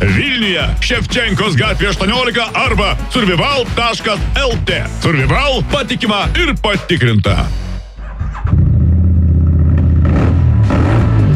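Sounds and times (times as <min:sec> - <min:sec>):
speech: 0:00.0 - 0:07.6
street adventure motorcycle or scooter engine revving: 0:08.0 - 0:11.3.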